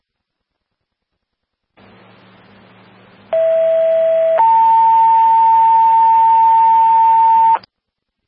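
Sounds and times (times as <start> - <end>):
faint radio hiss: 0.0 - 8.2
low hum: 1.5 - 7.6
loud two-tone electronic dispatch page: 3.3 - 7.7.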